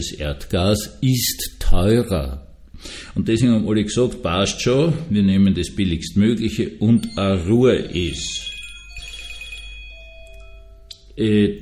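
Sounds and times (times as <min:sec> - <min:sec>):
speech: 0:00.0 - 0:08.5, 0:11.2 - 0:11.6
mobile phone electronic ringtone chiming: 0:07.0 - 0:11.2.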